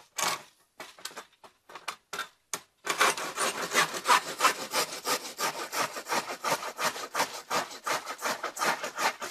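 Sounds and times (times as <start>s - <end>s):
hand saw cutting through wood: 2.9s - 9.2s.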